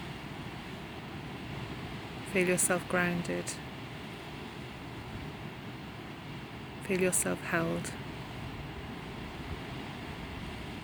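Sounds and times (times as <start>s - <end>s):
sea surf rushing by the shore: 0.0s - 10.8s
speech: 2.3s - 3.6s, 6.9s - 8.0s.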